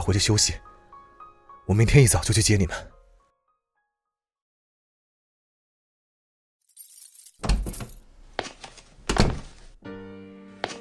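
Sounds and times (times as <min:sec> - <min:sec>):
speech: 0:00.1 - 0:00.7, 0:01.7 - 0:02.9
keys jingling: 0:06.6 - 0:08.1
heavy clunks of a home door lock and handle: 0:07.0 - 0:08.0
home door creaking as it swings open: 0:07.3 - 0:08.0.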